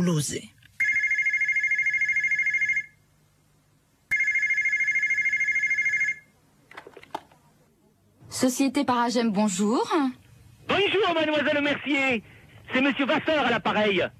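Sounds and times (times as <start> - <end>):
speech: 0.0 - 0.6, 8.4 - 14.1
telephone ringing in long buzzing trills: 0.8 - 3.0, 4.1 - 6.3.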